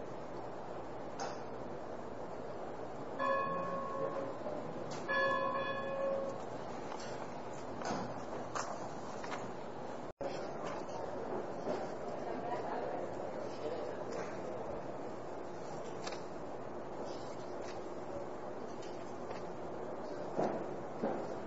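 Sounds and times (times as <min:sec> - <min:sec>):
steady room hum: 0:00.0 - 0:21.4
bell ringing: 0:03.2 - 0:04.4, 0:05.1 - 0:06.4.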